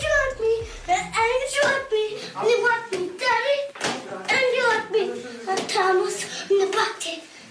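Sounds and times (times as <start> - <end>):
toddler singing and babbling on an old lo-fi home recording: 0.0 - 7.3
sharp clap-like knocks: 1.6 - 1.9.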